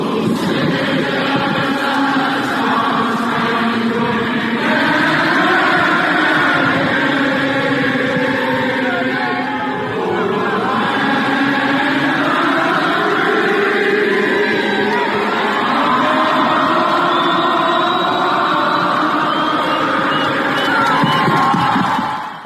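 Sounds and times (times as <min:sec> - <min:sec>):
huge stadium crowd at a soccer match singing the national anthem: 0:00.0 - 0:22.4
scattered shouts: 0:00.0 - 0:22.4.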